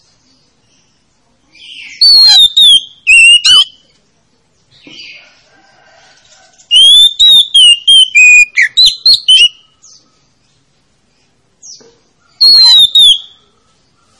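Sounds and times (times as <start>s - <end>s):
Oriental magpie-robin singing rich whistled phrases with sharp high notes: 0.7s - 3.9s, 6.7s - 10.2s, 11.6s - 14.1s.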